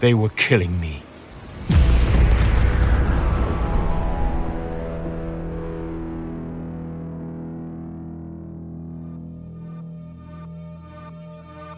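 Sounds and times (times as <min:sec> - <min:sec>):
speech: 0:00.0 - 0:01.1
explosion of a spacecraft thruster: 0:01.4 - 0:07.5.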